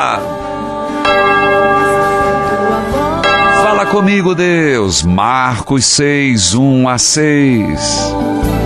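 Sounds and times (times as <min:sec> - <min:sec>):
speech: 0:00.0 - 0:00.4, 0:03.9 - 0:08.5
church bell rung by the sacristan during Mass: 0:01.0 - 0:05.1.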